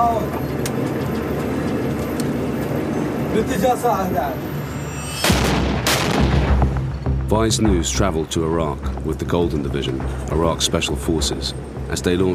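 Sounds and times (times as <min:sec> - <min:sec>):
constant noisy din: 0:00.0 - 0:12.3
speech: 0:03.4 - 0:04.5, 0:07.3 - 0:12.3
gunshots from an enemy-held building: 0:05.2 - 0:06.6
booms from an enemy-held building: 0:05.2 - 0:06.9.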